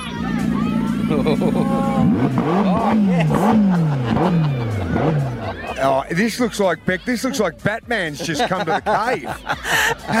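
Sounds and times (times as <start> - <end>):
McLaren sports car engine revving in a driveway: 0.0 - 5.8
busy background of voices: 0.0 - 10.1
laughter: 0.9 - 2.0, 2.6 - 10.1
speech: 1.1 - 10.1.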